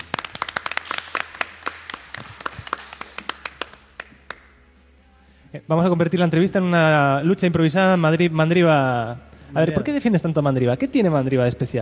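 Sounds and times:
small group clapping at an interview: 0:00.0 - 0:04.6
speech: 0:05.5 - 0:11.8.

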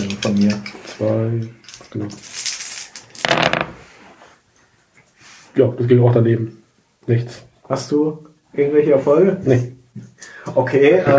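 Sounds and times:
speech: 0:00.1 - 0:02.4, 0:05.6 - 0:11.1
dice rolled for a skill check rattling: 0:01.7 - 0:03.8.

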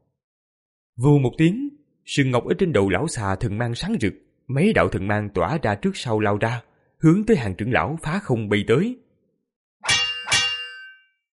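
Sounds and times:
speech: 0:01.0 - 0:09.0
metal weapons clashing: 0:09.8 - 0:11.0.

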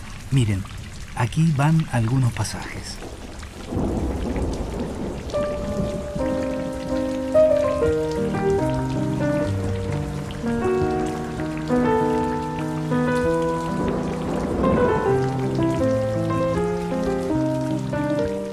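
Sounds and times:
rain pattering: 0:00.0 - 0:18.5
speech: 0:00.3 - 0:04.0
thunder rumbling: 0:03.0 - 0:18.5
slow melodic instrumental line: 0:05.3 - 0:18.5.

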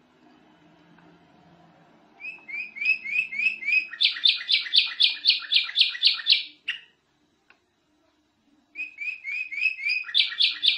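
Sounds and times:
canary song with pulsing trill and rising chirps: 0:01.9 - 0:07.1, 0:08.7 - 0:10.7.

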